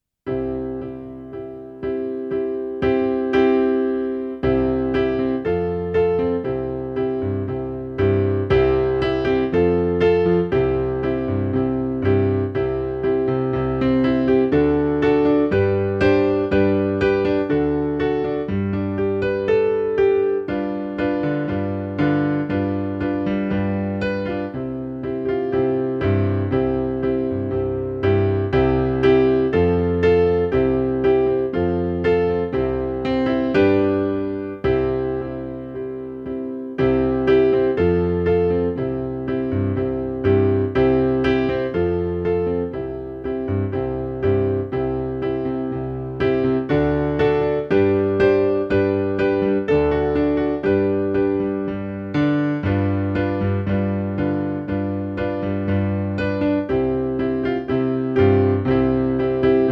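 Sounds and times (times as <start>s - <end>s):
piano piece in G major: 0.0s - 59.6s.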